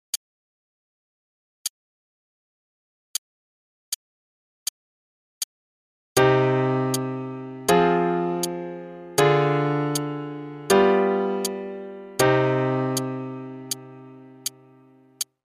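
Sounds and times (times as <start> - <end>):
c minor piano chord progression with legato pedal: 6.2 - 15.2.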